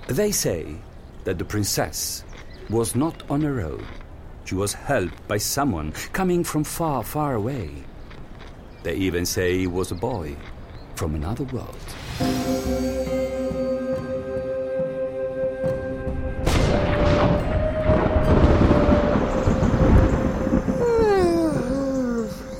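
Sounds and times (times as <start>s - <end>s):
speech: 0.1s - 7.9s, 8.8s - 13.2s
steady musical drone: 12.2s - 22.5s
loud thunderclap rolling into heavy rumble: 16.1s - 22.5s.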